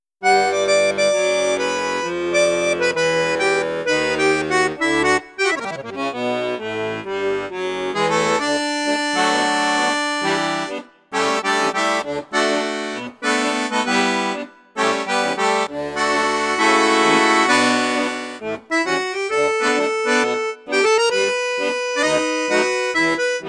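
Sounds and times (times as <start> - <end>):
accordion with bassoon flute and piccolo registers: 0.2 - 23.4.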